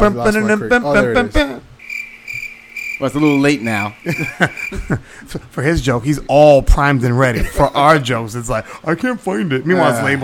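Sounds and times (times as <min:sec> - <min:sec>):
speech: 0:00.0 - 0:01.6, 0:03.0 - 0:10.2
cricket chirp sound effect: 0:01.8 - 0:05.0
laughter: 0:03.8 - 0:05.6.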